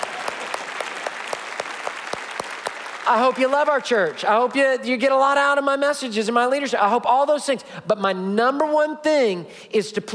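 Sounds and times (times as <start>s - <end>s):
church congregation clapping: 0.0s - 4.8s
speech: 3.1s - 10.1s.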